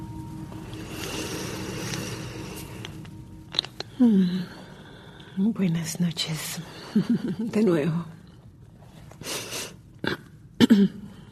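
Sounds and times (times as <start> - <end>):
speech: 4.0 - 4.6, 5.4 - 8.2, 10.8 - 11.0
person coughing: 10.1 - 11.2.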